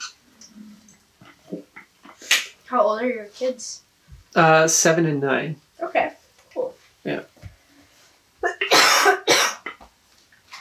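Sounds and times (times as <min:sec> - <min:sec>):
speech: 0:02.7 - 0:06.1
sharp dry coughs: 0:08.4 - 0:09.8.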